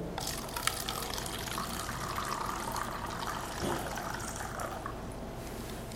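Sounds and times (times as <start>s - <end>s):
water poured from one glass into another: 0.2s - 5.0s.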